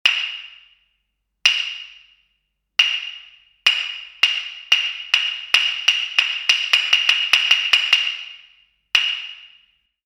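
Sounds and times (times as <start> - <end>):
hyoshigi wooden clappers striking: 0.0 - 0.7, 1.5 - 2.1, 2.8 - 8.4, 9.0 - 9.6.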